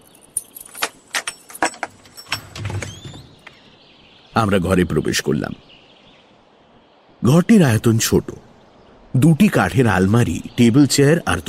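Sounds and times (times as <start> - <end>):
bunch of keys jangling: 0.0 - 3.2
door padlock unlocking clunk: 0.4 - 3.6
speech: 4.4 - 5.8, 7.2 - 8.5, 9.1 - 11.4.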